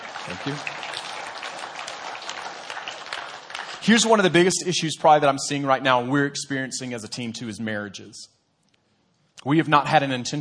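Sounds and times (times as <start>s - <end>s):
crowd clapping in a large room: 0.0s - 4.8s
speech: 0.2s - 0.9s, 3.8s - 8.4s, 9.4s - 10.3s.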